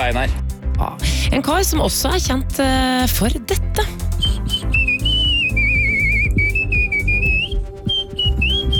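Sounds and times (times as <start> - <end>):
speech: 0.0 - 4.6
person whistling a lilting melody: 4.1 - 8.7.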